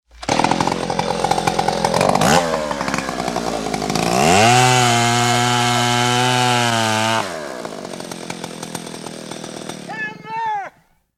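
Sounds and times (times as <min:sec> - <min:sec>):
chainsaw cutting tree: 0:00.1 - 0:10.1
person shouting: 0:09.9 - 0:10.8.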